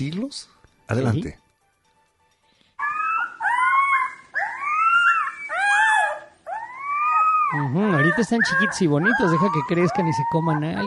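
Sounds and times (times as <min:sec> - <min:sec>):
speech: 0:00.0 - 0:01.4, 0:07.5 - 0:10.8
genetically recreated dire wolf pups howling: 0:02.8 - 0:10.8.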